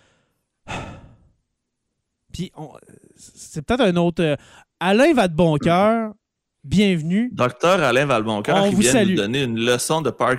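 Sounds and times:
faint inhale of a person imitating a speaker catching his breath: 0.0s - 1.4s
loud breathy exhalation of a person imitating a speaker catching his breath: 0.0s - 1.4s
speech: 2.4s - 10.3s.

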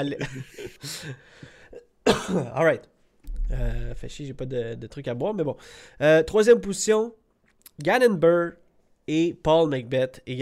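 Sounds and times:
speech: 0.0s - 2.9s, 3.5s - 10.4s
person coughing to clear the throat: 1.8s - 2.7s.

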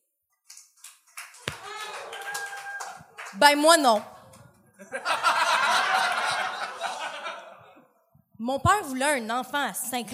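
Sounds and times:
moderate applause from a small crowd: 0.7s - 4.4s, 5.0s - 7.4s
speech: 3.3s - 4.1s, 8.4s - 10.1s
laughter: 4.7s - 8.0s.

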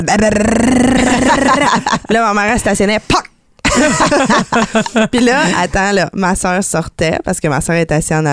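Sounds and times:
voice imitating the loud engine of a car arriving: 0.0s - 1.8s
speech: 0.0s - 8.3s
laughter: 1.0s - 2.3s, 3.6s - 5.8s.

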